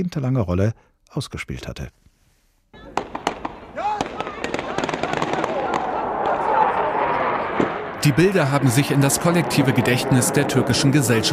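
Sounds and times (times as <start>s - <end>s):
speech: 0.0s - 2.0s, 8.0s - 11.3s
loud agitated crowd shouting and clamouring: 2.8s - 8.1s
rapid irregular gunshots fired at demonstrators: 2.8s - 8.6s.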